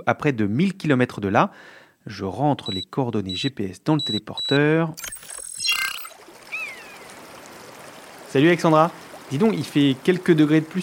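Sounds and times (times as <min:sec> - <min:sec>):
speech: 0:00.0 - 0:05.2, 0:08.3 - 0:10.8
bird chirp: 0:05.7 - 0:07.2
river water rushing and splashing in the Orbiel valley near Carcassonne, France: 0:06.1 - 0:10.8.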